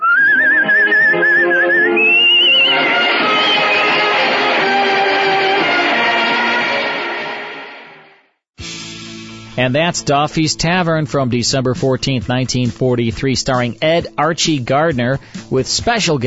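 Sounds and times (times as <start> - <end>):
person whistling a song melody: 0.0 - 4.6
full band playing: 0.0 - 15.1
speech: 9.6 - 16.2.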